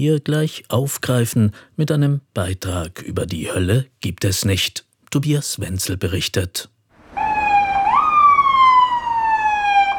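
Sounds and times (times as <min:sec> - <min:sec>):
speech: 0:00.0 - 0:06.8
faint street rumble: 0:06.9 - 0:09.9
ambulance siren wailing as vehicle passes: 0:07.0 - 0:09.9.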